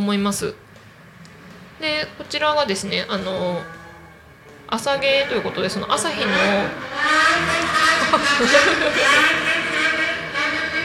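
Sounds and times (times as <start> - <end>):
speech: 0.0 - 0.6, 1.8 - 3.8, 4.7 - 9.5
loud motorcycle engine roaring by: 0.0 - 10.8
people chattering: 0.0 - 10.8
people laughing: 5.4 - 10.8.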